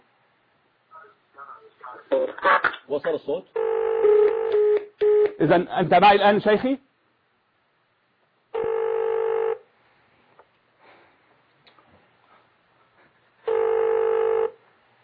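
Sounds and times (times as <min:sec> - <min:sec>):
speech: 0:01.8 - 0:04.2, 0:05.4 - 0:06.8
telephone ringback tone of a call placed during a live broadcast: 0:03.6 - 0:05.3, 0:08.6 - 0:09.6, 0:13.5 - 0:14.6.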